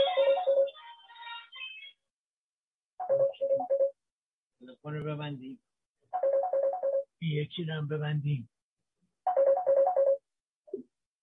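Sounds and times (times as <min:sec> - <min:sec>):
phone ringtone for an incoming call: 0:00.0 - 0:00.9, 0:03.0 - 0:04.0, 0:06.1 - 0:07.1, 0:09.2 - 0:10.3
speech: 0:04.7 - 0:05.7, 0:07.2 - 0:08.5.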